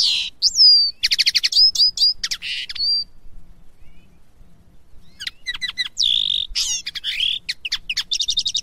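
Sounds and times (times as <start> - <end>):
Common linnet Carduelis cannabina singing a teaching song: 0.0 - 3.1, 5.0 - 8.6.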